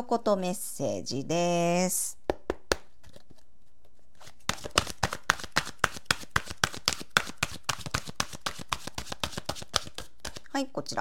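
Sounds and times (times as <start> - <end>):
speech: 0.1 - 2.3, 10.6 - 11.0
oracle cards being shuffled: 2.8 - 10.5.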